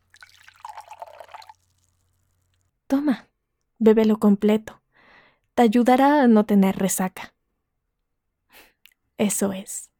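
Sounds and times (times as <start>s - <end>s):
water poured into a glass: 0.0s - 2.6s
speech: 3.0s - 4.8s, 5.6s - 7.3s, 8.6s - 9.9s.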